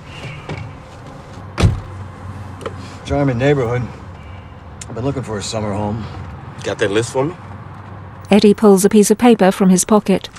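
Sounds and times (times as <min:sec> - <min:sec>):
van door thumping shut: 0:01.6 - 0:01.9
speech: 0:03.1 - 0:04.0, 0:05.0 - 0:07.4, 0:08.3 - 0:10.3.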